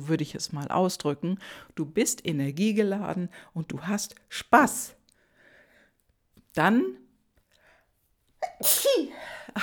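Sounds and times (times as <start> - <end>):
speech: 0.0 - 5.0, 6.6 - 7.0, 8.5 - 9.6
single loud sneeze: 8.4 - 9.6.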